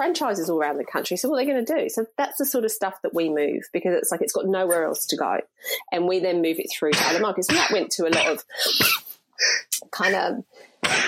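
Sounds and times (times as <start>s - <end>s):
speech: 0.0s - 11.0s
person sneezing loudly: 7.0s - 9.8s, 10.8s - 11.0s.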